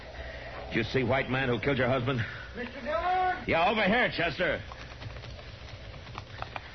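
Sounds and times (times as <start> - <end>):
speech: 0.7 - 4.7
horse hooves clip-clopping at a slow walk: 2.6 - 6.7.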